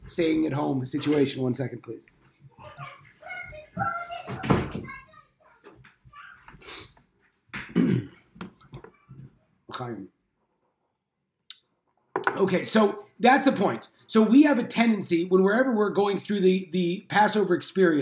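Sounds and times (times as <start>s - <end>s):
speech: 0.1s - 3.0s, 3.8s - 5.0s, 9.8s - 10.1s, 12.4s - 18.0s
child chattering: 2.6s - 6.8s
door opening with dull thumps and knocks: 4.3s - 5.0s.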